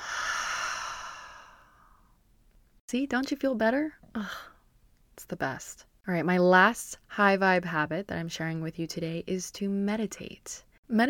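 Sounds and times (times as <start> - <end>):
deep breath out through a wide-open mouth: 0.0 - 2.1
speech: 2.9 - 4.5, 5.2 - 11.0.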